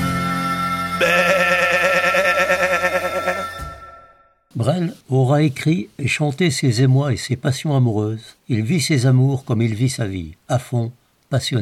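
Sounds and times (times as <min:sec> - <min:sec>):
speech: 0:01.0 - 0:01.2, 0:04.6 - 0:11.6
sheep bleating: 0:01.0 - 0:03.6.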